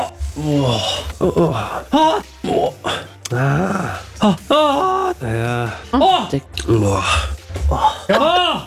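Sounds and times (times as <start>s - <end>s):
man moaning while watching a football match at a public viewing: 0.3s - 5.8s, 6.9s - 8.6s.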